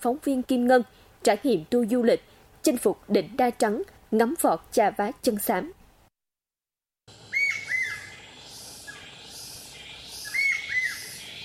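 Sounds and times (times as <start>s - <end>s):
speech: 0.0s - 5.8s
steady hiss of forest ambience: 0.1s - 5.6s, 7.1s - 11.4s
whistled forest bird calls from the canopy: 7.3s - 11.4s.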